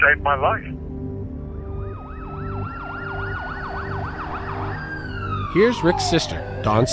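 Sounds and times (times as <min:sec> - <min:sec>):
speech: 0:00.0 - 0:00.8, 0:05.5 - 0:06.9
ambulance siren wailing in a fast yelp: 0:01.4 - 0:06.9.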